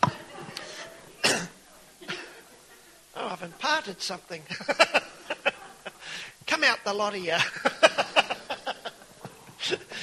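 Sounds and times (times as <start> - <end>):
laughter: 0.0 - 1.2, 2.0 - 6.4, 7.2 - 10.0
person coughing: 1.2 - 2.4
speech: 3.4 - 5.0, 6.6 - 7.7.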